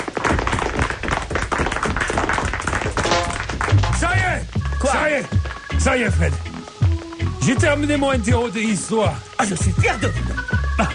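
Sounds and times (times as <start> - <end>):
group applauding: 0.0 - 7.3
speech: 5.8 - 6.5, 7.4 - 10.9.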